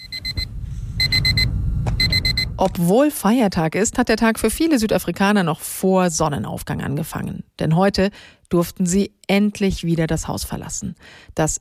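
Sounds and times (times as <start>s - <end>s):
electronic alarm clock ringing in shrill high beeps: 0.0s - 2.6s
low rumble: 0.0s - 3.0s
speech: 2.6s - 11.5s.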